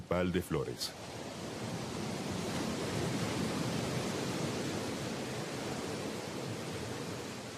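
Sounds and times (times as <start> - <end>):
stormy sea surf roaring against breakwaters at Santa Cruz in Flores during a storm: 0.0 - 7.5
speech: 0.1 - 1.2.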